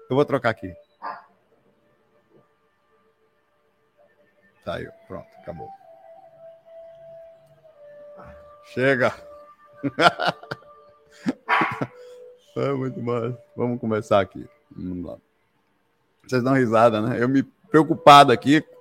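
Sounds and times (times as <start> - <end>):
speech: 0.1 - 0.8, 4.7 - 5.8, 8.7 - 15.3, 16.2 - 18.7
small female dog barking: 1.0 - 1.3, 11.5 - 12.0
laughter: 9.8 - 12.0.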